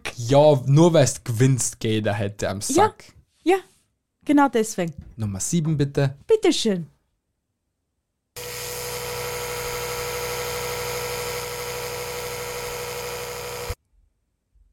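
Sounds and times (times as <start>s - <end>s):
speech: 0.2s - 6.9s
electric toothbrush buzzing: 8.4s - 13.8s.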